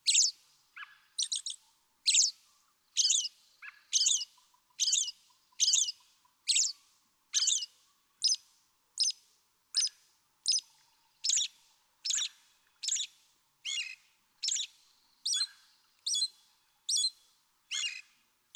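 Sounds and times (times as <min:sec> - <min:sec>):
American robin chirping in varied phrases: 0:00.1 - 0:00.4, 0:01.2 - 0:02.4, 0:03.0 - 0:03.3, 0:03.9 - 0:06.7, 0:11.2 - 0:18.5.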